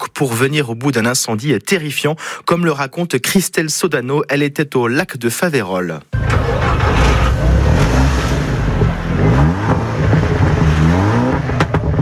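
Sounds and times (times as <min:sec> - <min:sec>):
speech: 0:00.2 - 0:07.5
car engines roaring and revving as vehicles accelerate: 0:06.2 - 0:12.0.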